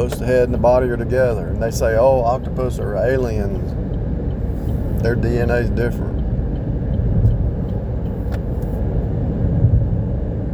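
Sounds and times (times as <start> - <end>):
car cruising on a highway: 0.0 - 10.5
speech: 0.1 - 3.8, 5.0 - 6.2.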